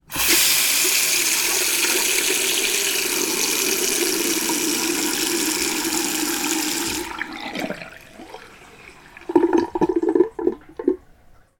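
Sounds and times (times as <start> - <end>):
household sink tap water running: 0.0 - 11.1
sink drain gargling: 3.0 - 11.2.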